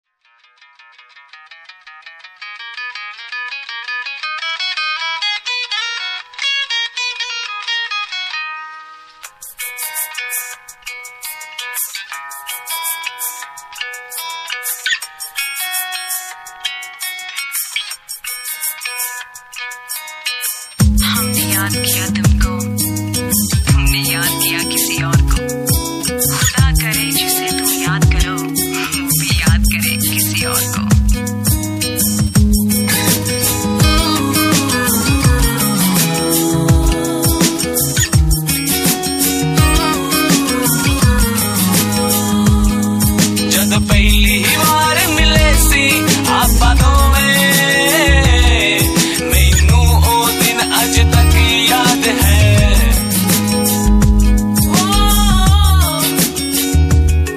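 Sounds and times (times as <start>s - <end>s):
Asian groove music: 0.3s - 57.3s.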